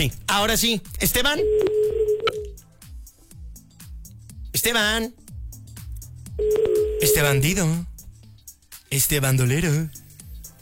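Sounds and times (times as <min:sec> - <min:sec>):
speech: 0:00.0 - 0:02.1, 0:04.6 - 0:05.2, 0:06.4 - 0:07.9, 0:08.9 - 0:10.0
telephone redial dialing tones: 0:01.4 - 0:02.5, 0:06.4 - 0:07.4.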